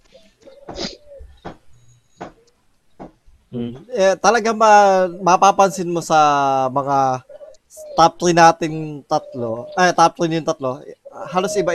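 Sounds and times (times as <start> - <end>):
pigeon cooing: 0.0 - 1.6, 3.6 - 3.9, 7.2 - 8.1, 9.0 - 9.8, 10.8 - 11.7
speech: 3.5 - 7.3, 8.0 - 11.7.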